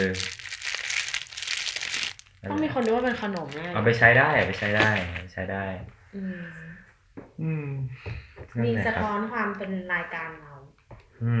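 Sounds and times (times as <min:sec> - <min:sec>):
speech: 0:00.0 - 0:00.3, 0:02.4 - 0:11.3
plastic wrapper of a skeleton-shaped pen crinkling: 0:00.0 - 0:05.2.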